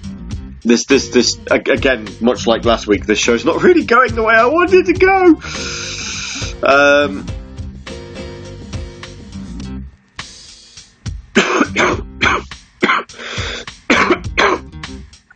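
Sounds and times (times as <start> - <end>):
speech: 0.6 - 6.0, 6.6 - 7.3
person clearing throat with a drawn-out rumbling rasp: 11.4 - 14.8
person coughing harsh sharp bursts: 11.4 - 14.8.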